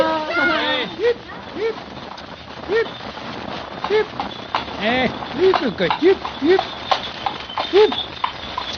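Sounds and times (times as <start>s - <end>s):
horse hooves clip-clopping at a trot pulling a milkman's two-wheeled cart: 0.0s - 8.7s
short squeaky creaking tones: 2.8s - 8.7s
speech: 4.8s - 6.8s, 7.7s - 8.1s.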